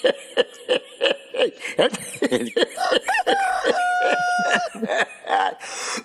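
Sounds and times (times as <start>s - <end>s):
laughter: 0.0s - 6.0s
rooster crowing: 2.8s - 5.0s.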